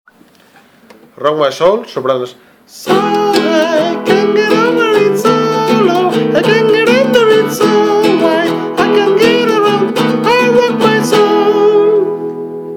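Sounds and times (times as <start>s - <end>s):
soprano singing: 2.8s - 12.5s.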